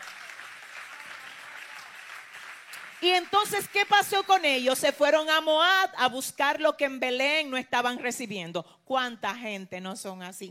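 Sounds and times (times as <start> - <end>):
audience applause: 0.0 - 4.4
speech: 3.0 - 10.4.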